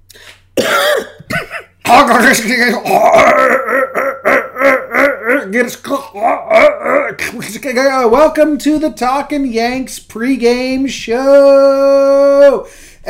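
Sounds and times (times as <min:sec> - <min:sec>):
person clearing throat during vocal warm-ups: 0:00.6 - 0:01.8, 0:02.8 - 0:07.4
speech: 0:01.9 - 0:04.0, 0:05.4 - 0:13.0
loud wordless groans and hums during vocal warm-ups: 0:02.8 - 0:07.3.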